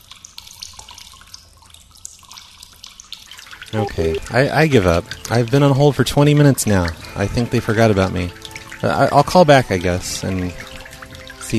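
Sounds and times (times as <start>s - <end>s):
water running from a faucet: 2.4s - 11.5s
speech: 3.7s - 10.6s.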